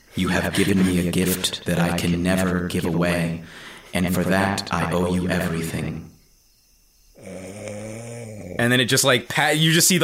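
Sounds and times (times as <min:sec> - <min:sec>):
speech: 0:00.2 - 0:06.1, 0:08.6 - 0:10.0
person faking a snore with a buzzy vocal rasp: 0:07.2 - 0:08.8.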